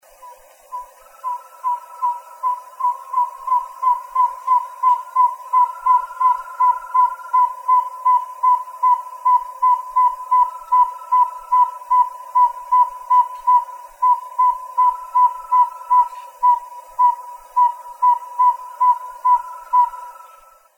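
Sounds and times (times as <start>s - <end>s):
Aegolius ridgwayi calling: 0.1s - 20.7s.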